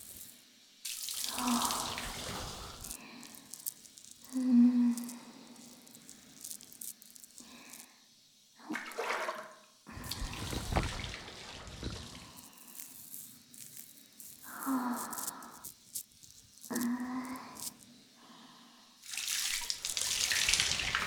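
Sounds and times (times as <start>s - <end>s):
hot running water rinsing hair: 0.0s - 7.8s, 10.0s - 17.8s, 19.0s - 21.0s.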